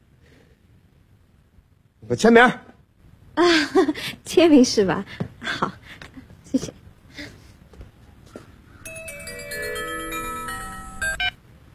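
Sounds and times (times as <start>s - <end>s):
low noise: 0.0s - 11.7s
speech: 2.0s - 2.7s, 3.4s - 5.3s
phone ringing with a bright melodic electronic ringtone: 8.8s - 11.4s.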